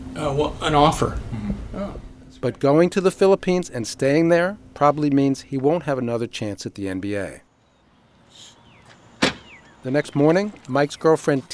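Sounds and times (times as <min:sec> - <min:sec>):
speech: 0:00.2 - 0:07.4, 0:09.8 - 0:11.5
faint chirping: 0:07.5 - 0:09.9
car door or trunk slamming shut outdoors: 0:08.9 - 0:09.7.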